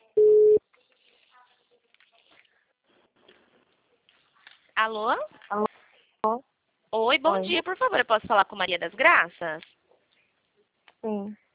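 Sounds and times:
telephone line beep at the start of a recorded phone call: 0.2 - 0.6
speech: 4.8 - 9.7, 11.0 - 11.4.

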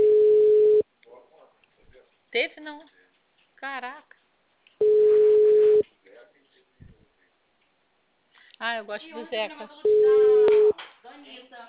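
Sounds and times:
telephone calling tone as a call is placed: 0.0 - 0.8, 4.8 - 5.8, 9.8 - 10.7
speech: 2.6 - 3.0, 3.6 - 4.2, 8.6 - 11.6.

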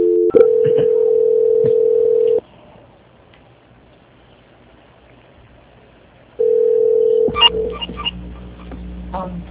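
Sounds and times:
telephone tone during a call transfer: 0.0 - 2.4, 6.4 - 8.1
telephone line clicks as the call connects: 1.4 - 2.4.

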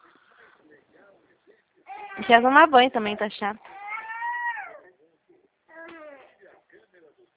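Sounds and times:
speech: 1.5 - 3.7
small girl crying: 1.9 - 2.3, 3.6 - 4.8.

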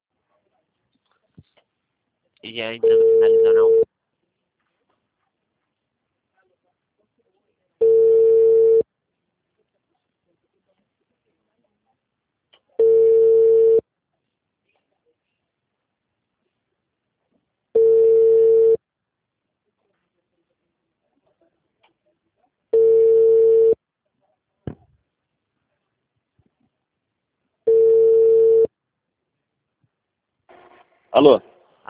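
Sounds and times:
speech: 2.4 - 3.9, 31.2 - 31.8
telephone busy tone after a dropped call: 2.8 - 3.8, 7.8 - 8.8, 12.8 - 13.8, 17.8 - 18.8, 22.8 - 23.8, 27.7 - 28.7.

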